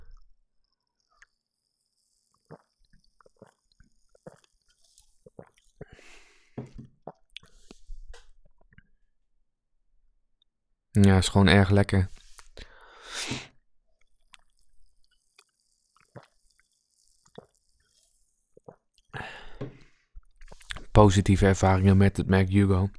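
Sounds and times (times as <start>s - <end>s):
person slurping a cherry-scented drink: 2.0s - 7.9s, 12.1s - 13.5s, 15.4s - 19.2s, 20.4s - 20.9s
speech: 11.0s - 12.2s, 21.0s - 22.9s.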